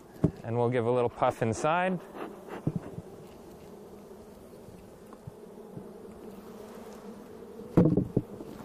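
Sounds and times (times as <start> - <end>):
many honeybees buzzing in an opened beehive: 0.0 - 8.6
speech: 0.5 - 2.2.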